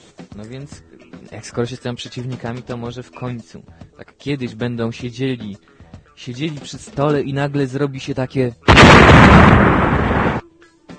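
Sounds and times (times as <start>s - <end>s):
speech: 0.4s - 9.6s
voice imitating a big explosion: 8.7s - 10.4s.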